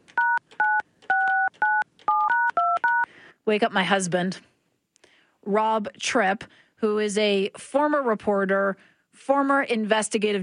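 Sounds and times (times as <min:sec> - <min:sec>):
telephone keypad tones dialing a phone call: 0:00.1 - 0:03.1
speech: 0:03.5 - 0:04.5, 0:05.4 - 0:10.4.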